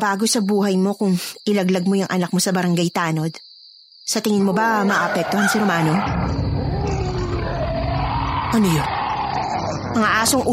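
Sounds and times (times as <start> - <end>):
speech: 0.0 - 3.5, 4.1 - 6.4, 8.5 - 9.0, 9.7 - 10.5
deep continuous roaring growl: 6.1 - 10.5.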